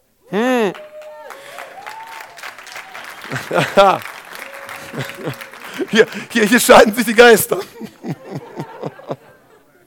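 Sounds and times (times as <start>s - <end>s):
loud whoops and excited voices: 0.2s - 6.1s
audience clapping in church: 0.6s - 9.2s
laughter: 2.9s - 9.8s
speech: 3.3s - 4.1s, 4.9s - 8.2s.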